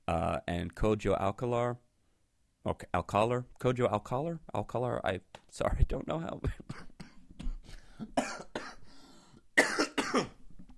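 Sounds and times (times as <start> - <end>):
speech: 0.1 - 1.9, 2.6 - 6.8
person coughing harshly: 6.4 - 8.9, 9.6 - 10.4.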